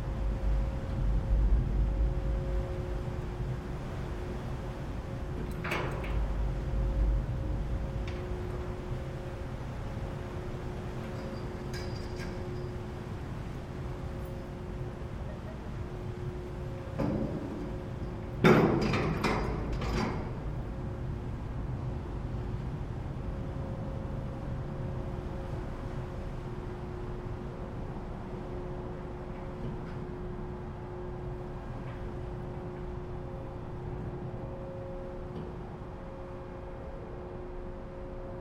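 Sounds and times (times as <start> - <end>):
ferry engine deep steady rumble: 0.0 - 38.3
low droning hum on a ferry passenger deck: 0.0 - 38.3
sharp metallic clanks and bangs of a ferry landing: 18.4 - 20.3.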